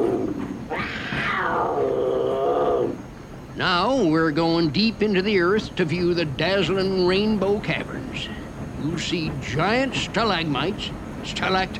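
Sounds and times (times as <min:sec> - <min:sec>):
mountain lion roar: 0:00.0 - 0:03.0
low rumbling background: 0:00.0 - 0:11.7
speech: 0:03.6 - 0:11.7.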